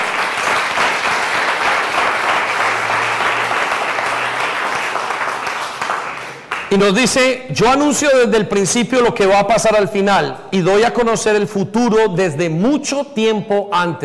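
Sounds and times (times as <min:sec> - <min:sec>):
large crowd applauding: 0:00.0 - 0:07.2
speech: 0:06.8 - 0:14.0.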